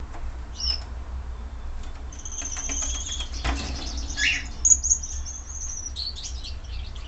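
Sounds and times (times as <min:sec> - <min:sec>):
steady low hum: 0:00.0 - 0:07.0
red-headed Gouldian finch singing thin high whistles and buzzy hissing notes: 0:02.1 - 0:07.0.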